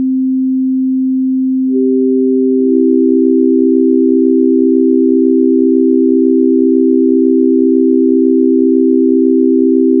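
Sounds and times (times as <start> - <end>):
C major chord of sine waves: 0.0 - 9.9.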